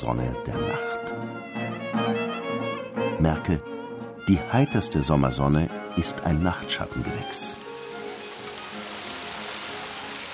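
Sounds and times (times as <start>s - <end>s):
speech: 0.0s - 2.2s, 3.2s - 7.7s
summer rain pattering on leaves of bushes and trees: 6.1s - 10.3s.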